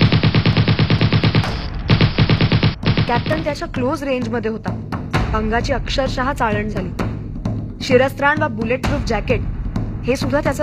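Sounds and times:
automatic machine gun firing indiscriminately: 0:00.0 - 0:03.6
speech: 0:03.1 - 0:07.1, 0:07.8 - 0:10.6.

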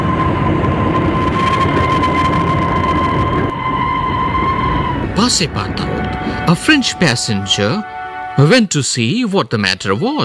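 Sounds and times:
train rumbling: 0:00.0 - 0:10.2
shrill high tone like a train whistle or squealing brakes: 0:01.4 - 0:08.8
speech: 0:05.3 - 0:10.2.

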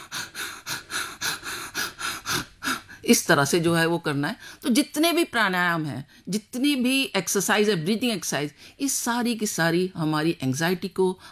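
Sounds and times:
bhastrika breathing, rapid forceful breaths during a pranayama breathing exercise: 0:00.0 - 0:03.1
speech: 0:03.1 - 0:11.3.

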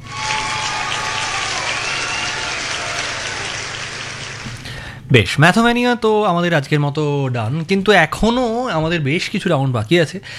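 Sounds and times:
sustained applause for quiz contestants: 0:00.0 - 0:04.6
speech: 0:05.1 - 0:10.3.

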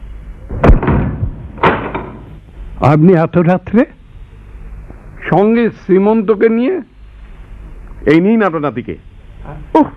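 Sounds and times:
door banging as it is opened: 0:00.5 - 0:02.3
speech: 0:02.8 - 0:04.0, 0:05.3 - 0:06.9, 0:08.0 - 0:09.9.

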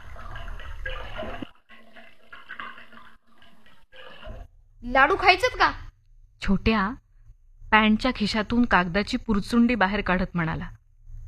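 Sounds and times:
thin stream of water trickling from a tap into a water tank: 0:00.0 - 0:04.6
speech: 0:04.8 - 0:05.8, 0:06.4 - 0:07.0, 0:07.7 - 0:10.8.

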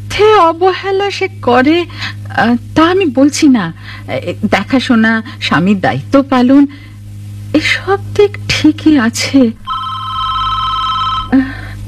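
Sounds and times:
low hum: 0:00.0 - 0:11.8
speech: 0:00.4 - 0:06.9, 0:07.5 - 0:09.6, 0:11.3 - 0:11.5
telephone ringing with a rapid electronic trill: 0:09.6 - 0:11.5.

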